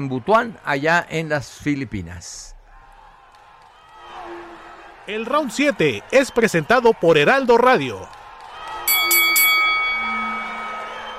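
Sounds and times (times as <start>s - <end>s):
speech: 0.0s - 2.6s, 5.1s - 8.2s
boxing ring bell clanging to start a round: 8.9s - 11.1s.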